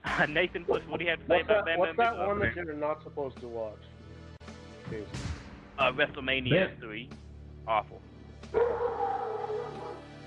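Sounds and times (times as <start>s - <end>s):
speech: 0.2s - 3.9s, 4.9s - 9.0s
dog barking in a drawn-out moaning call: 8.6s - 10.0s.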